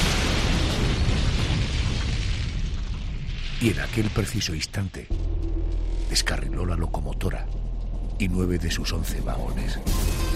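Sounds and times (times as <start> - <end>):
dynamite explosion rumbling boom: 0.0 - 4.5
speech: 3.6 - 5.4, 6.1 - 7.6, 8.2 - 10.2.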